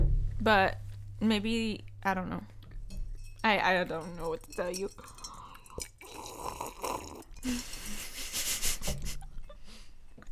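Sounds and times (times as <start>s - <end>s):
speech: 0.4s - 2.6s, 3.4s - 5.2s
wet chewing and mouth noises: 2.6s - 8.0s.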